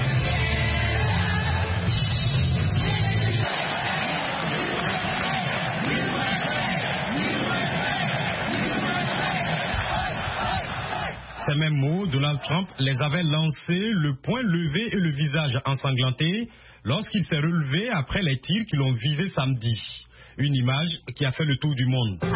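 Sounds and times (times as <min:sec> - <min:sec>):
convention crowd of delegates cheering and chanting in a huge hall: 0:00.0 - 0:14.0
speech: 0:11.5 - 0:22.3.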